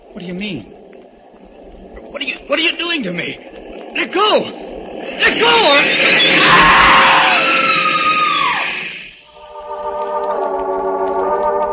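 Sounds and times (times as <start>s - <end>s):
high tonal drone: 0.0s - 11.7s
speech: 0.2s - 0.8s, 2.1s - 6.7s
woman screaming: 6.3s - 8.8s.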